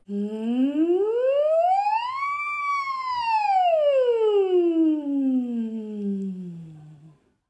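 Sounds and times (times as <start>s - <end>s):
single voice gliding up and down in a slow siren vocal exercise: 0.0s - 7.2s.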